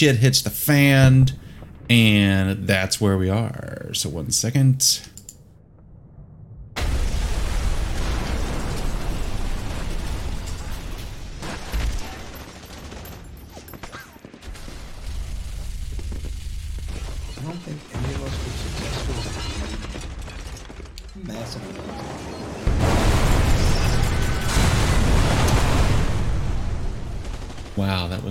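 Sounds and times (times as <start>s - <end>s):
speech: 0.0s - 5.1s
huge explosion with crackling debris: 0.9s - 3.1s, 5.6s - 12.4s, 14.5s - 20.4s, 21.3s - 28.2s.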